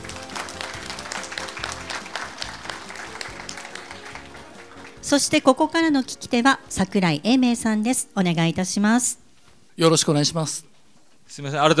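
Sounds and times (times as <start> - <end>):
large audience applause: 0.0 - 5.4
speech: 5.1 - 9.2, 9.8 - 10.7, 11.3 - 11.7.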